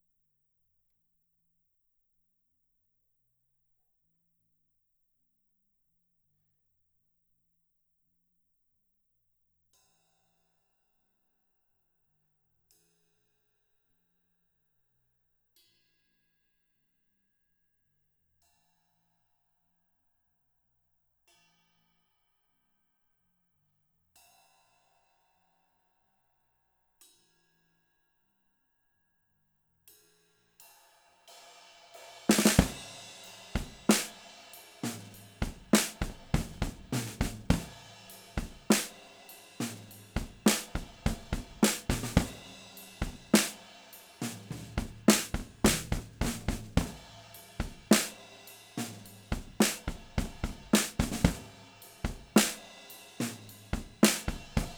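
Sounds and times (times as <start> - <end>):
snare drum: 32.2 - 54.7.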